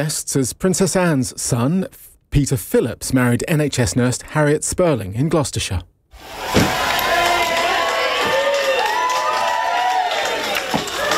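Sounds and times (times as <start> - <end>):
speech: 0.0 - 6.8
crowd of well-wishers cheering and whooping: 6.2 - 11.1
people shouting: 6.2 - 11.1.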